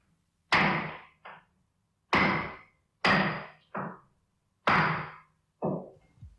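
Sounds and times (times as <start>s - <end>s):
hammer striking a nail: 0.5s - 1.4s, 2.1s - 4.0s, 4.6s - 6.0s.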